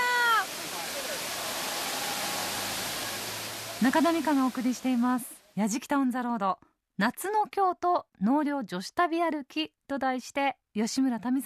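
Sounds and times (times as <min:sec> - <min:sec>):
river water flowing over rocks: 0:00.0 - 0:05.4
speech: 0:03.8 - 0:11.4.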